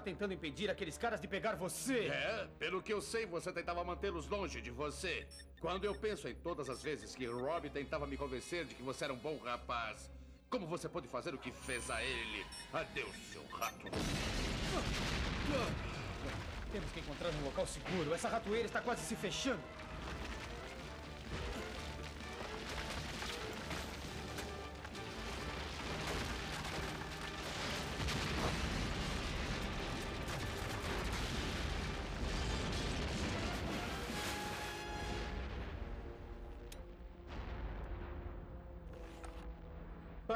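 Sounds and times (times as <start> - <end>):
speech: 0.0 - 19.8
roaring wall of explosions: 11.6 - 19.2, 19.8 - 40.3
crashing debris: 13.9 - 18.7, 19.6 - 36.7.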